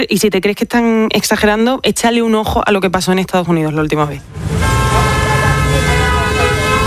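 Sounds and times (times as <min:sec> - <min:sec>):
speech: 0:00.0 - 0:05.1
engines rumbling in a traffic jam: 0:04.2 - 0:06.8
car horns blaring in a traffic jam: 0:04.3 - 0:06.8
sirens in a traffic jam: 0:04.4 - 0:06.8.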